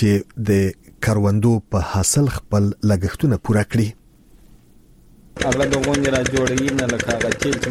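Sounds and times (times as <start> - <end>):
speech: 0.0 - 4.0, 5.4 - 7.6
diesel generator driving a pump irrigating a wheat field: 5.4 - 7.6.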